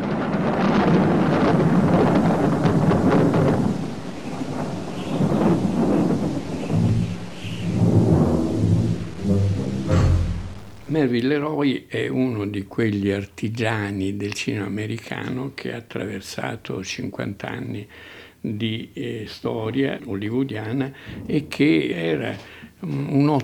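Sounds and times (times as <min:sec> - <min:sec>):
rain: 0:00.0 - 0:10.9
gusting wind: 0:00.0 - 0:11.1, 0:20.9 - 0:22.8
heavy rolling thunder: 0:00.0 - 0:11.1, 0:20.9 - 0:22.4
speech: 0:11.0 - 0:23.4.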